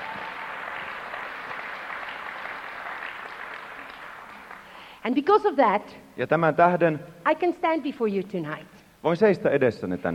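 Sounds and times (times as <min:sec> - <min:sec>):
crowd applause: 0:00.0 - 0:04.9
speech: 0:05.0 - 0:10.1.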